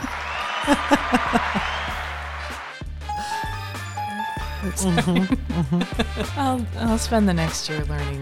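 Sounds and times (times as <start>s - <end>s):
laughter: 0.0s - 2.3s, 4.2s - 6.6s
canned applause and cheering sound effect: 0.0s - 5.1s
speech: 0.7s - 1.7s, 4.6s - 8.2s.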